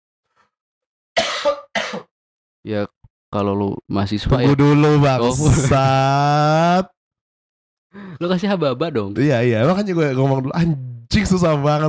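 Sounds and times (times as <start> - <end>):
person coughing harshly: 1.2 - 2.1
speech: 2.6 - 6.9, 7.9 - 11.8
laughter: 5.2 - 6.5.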